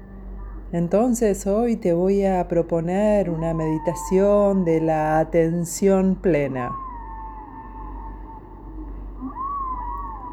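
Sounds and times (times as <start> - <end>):
low droning backdrop: 0.0 - 10.3
speech: 0.7 - 6.8
dolphin-like whistles: 6.8 - 10.3.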